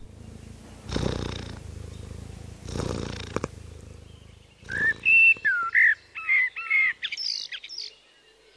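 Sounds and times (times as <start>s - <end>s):
cat purring: 0.0s - 6.2s
bright birdsong whistles and chirps: 4.0s - 8.5s.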